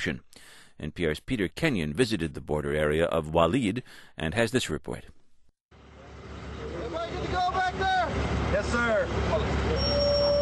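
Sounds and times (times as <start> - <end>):
speech: 0.0 - 5.2, 7.4 - 10.1
7-ton cargo truck driving with low engine rumble: 5.7 - 10.4
brief high-pitched squeals: 9.6 - 10.4.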